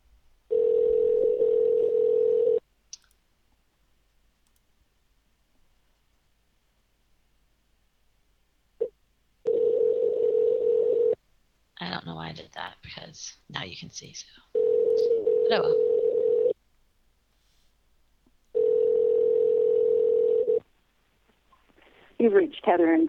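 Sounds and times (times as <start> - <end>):
telephone ringing tone on a call: 0.5 - 2.6, 9.4 - 11.2, 14.6 - 16.6, 18.6 - 20.6
speech: 12.4 - 15.9, 22.3 - 23.0.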